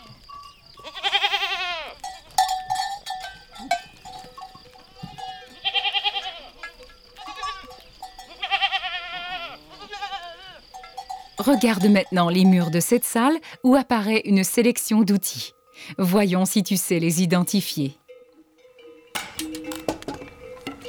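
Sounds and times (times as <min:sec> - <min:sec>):
small herding bells made with holm oak heartwood jangling: 0:00.0 - 0:01.0, 0:02.0 - 0:08.9, 0:10.6 - 0:20.8
goats and sheep bleating: 0:00.8 - 0:12.7
speech: 0:11.4 - 0:18.0.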